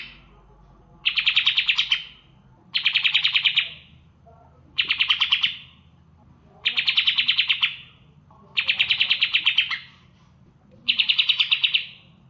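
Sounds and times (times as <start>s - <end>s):
faint low hum: 0.0s - 12.2s
leafbird singing with mimicry of bar-winged prinia calls: 1.0s - 4.0s, 4.8s - 5.8s, 6.6s - 8.0s, 8.6s - 9.9s, 10.9s - 12.2s.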